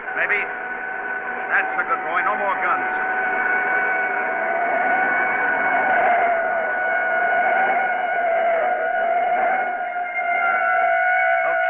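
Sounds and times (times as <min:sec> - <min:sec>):
faint engine noise: 0:00.0 - 0:11.6
police siren wailing: 0:00.0 - 0:11.6
speech: 0:00.2 - 0:00.7, 0:01.6 - 0:03.0.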